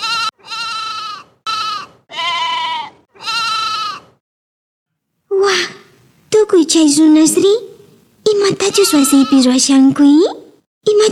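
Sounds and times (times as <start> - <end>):
sheep bleating: 0.0 - 4.2, 8.6 - 9.6
speech: 6.5 - 11.1.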